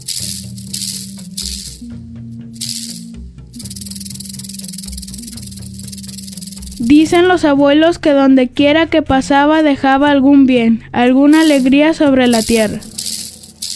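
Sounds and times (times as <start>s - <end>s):
snake tail rattling: 0.0s - 2.0s, 2.6s - 7.1s, 11.3s - 13.7s
low humming drone: 0.0s - 7.0s
speech: 6.8s - 12.9s.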